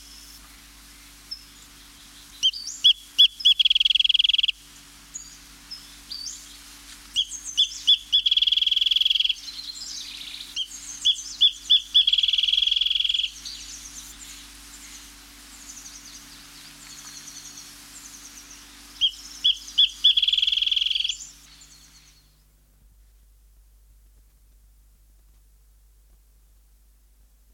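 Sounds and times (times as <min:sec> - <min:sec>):
wrentit singing: 0:01.3 - 0:22.3.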